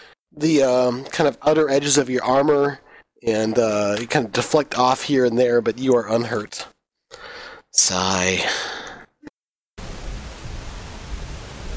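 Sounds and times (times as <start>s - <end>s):
speech: 0.3s - 6.7s, 7.7s - 8.7s
burst of noise: 9.8s - 11.7s
loud broadband static hiss from dying microphone battery: 9.8s - 11.7s.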